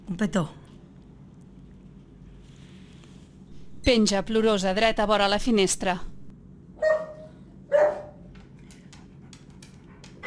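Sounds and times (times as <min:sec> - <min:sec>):
speech: 0:00.1 - 0:00.6, 0:03.9 - 0:06.1
medium-sized dog barking while being given food: 0:06.8 - 0:08.3.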